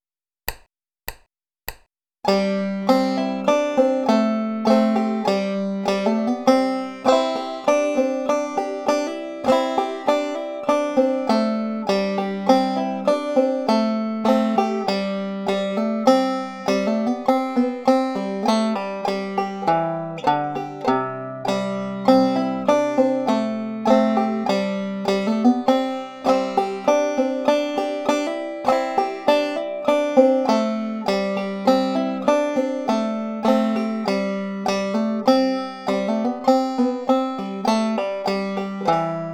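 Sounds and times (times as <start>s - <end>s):
folk tune with hammer-ons, pull-offs, rolls and triplets: 0.5s - 39.3s.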